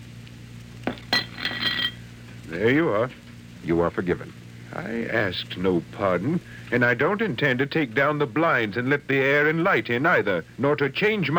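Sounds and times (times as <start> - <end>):
low steady hum: 0.0 - 11.3
plate and glass clinking as set down on a stool: 0.9 - 2.0
ringing rattle: 0.9 - 2.0
speech: 2.5 - 11.3.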